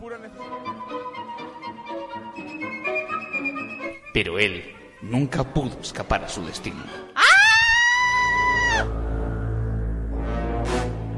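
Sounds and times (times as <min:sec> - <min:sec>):
speech: 0:04.2 - 0:07.1
elderly woman screaming while being mugged on the street: 0:07.2 - 0:08.9
low hum: 0:08.8 - 0:11.1.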